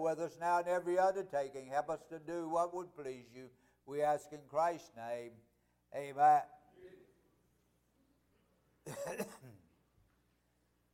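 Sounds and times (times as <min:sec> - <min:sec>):
speech: 0:00.0 - 0:07.0, 0:08.8 - 0:09.6
short rough throat clearing: 0:08.8 - 0:09.8.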